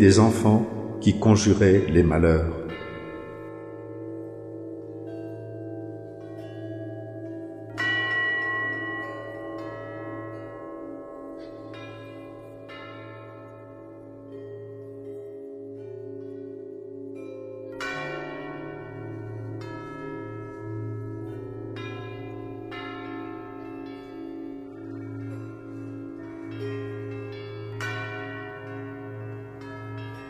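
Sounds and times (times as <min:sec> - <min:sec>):
speech: 0:00.0 - 0:02.6
cathedral church bells ringing in a sustained peal: 0:00.0 - 0:30.2.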